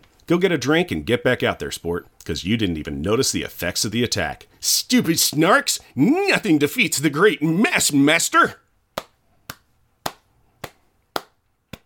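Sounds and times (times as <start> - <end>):
speech: 0.3 - 8.6
slow golf-style hand claps: 8.9 - 11.8.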